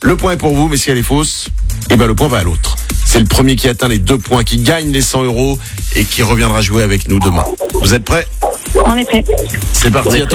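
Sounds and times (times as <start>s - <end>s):
speech: 0.0s - 10.3s
dog yipping and whimpering: 7.3s - 10.3s.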